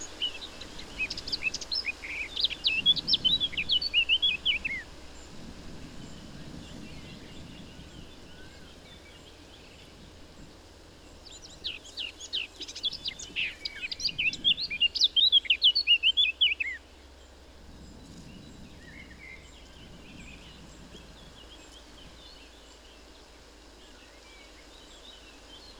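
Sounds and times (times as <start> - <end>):
Eurasian blackcap Sylvia atricapilla singing: 0.0 - 4.8, 11.2 - 16.8.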